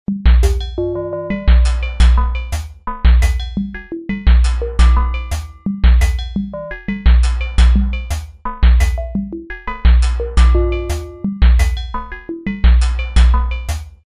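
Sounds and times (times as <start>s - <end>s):
drum kit pattern at 86 BPM: 0.1s - 14.0s
chromatic hits: 0.4s - 2.6s, 4.4s - 8.2s, 10.0s - 11.9s.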